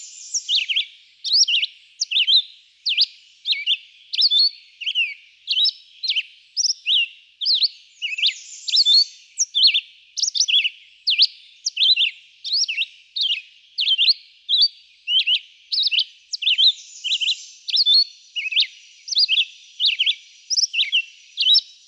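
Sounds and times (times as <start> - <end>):
Red-eyed vireo whistling short up-and-down phrases: 0.0 - 21.6.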